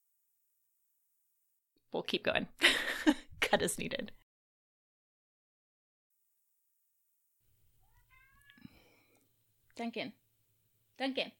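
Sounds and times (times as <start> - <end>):
speech: 1.9 - 4.2, 9.8 - 10.2, 11.0 - 11.3
cat meowing with soft rising chirps: 7.8 - 8.9.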